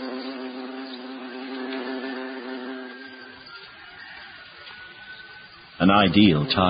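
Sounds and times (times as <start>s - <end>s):
hornet buzzing in flight in a forest: 0.0s - 4.2s, 5.8s - 6.6s
speech: 5.8s - 6.6s.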